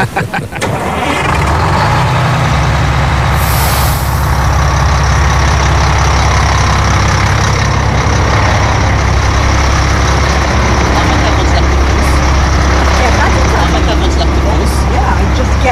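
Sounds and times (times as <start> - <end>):
laughter: 0.0 - 2.0, 13.0 - 14.7
tour bus engine cranking and starting: 0.0 - 15.7
tour bus air brakes releasing: 3.3 - 4.7.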